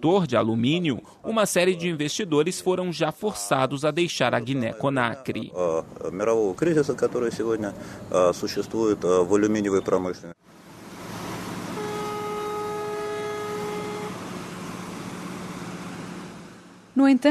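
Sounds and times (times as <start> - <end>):
speech: 0.0 - 10.4, 17.0 - 17.2
sustained multi-tone freight train horn: 11.7 - 14.5.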